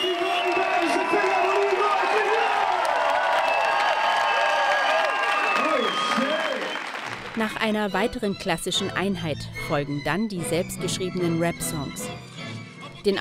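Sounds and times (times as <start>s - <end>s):
audience clapping after a hip-hop performance: 0.0s - 7.8s
speech: 7.4s - 12.3s.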